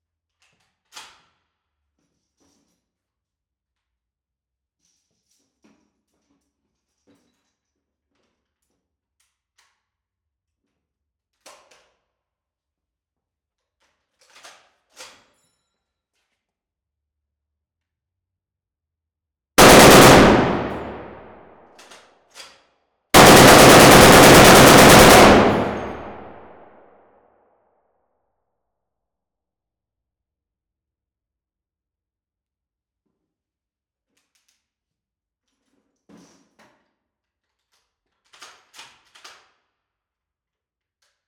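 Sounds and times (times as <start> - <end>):
Browning M2 .50 machine gun bursts in a medium warehouse: 19.6 - 21.4, 23.2 - 26.6.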